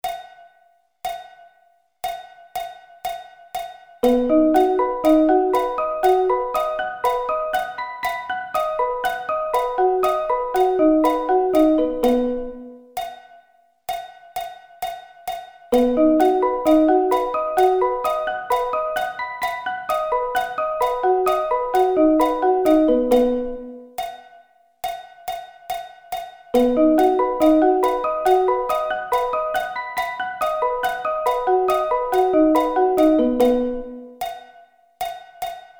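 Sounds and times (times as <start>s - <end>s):
B arpeggio inversions: 4.0s - 12.8s, 15.8s - 23.8s, 26.6s - 34.1s.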